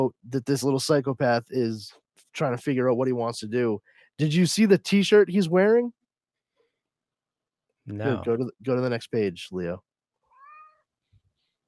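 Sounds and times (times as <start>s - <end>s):
speech: 0.0s - 6.0s, 7.9s - 9.9s
cat meowing: 10.4s - 10.8s.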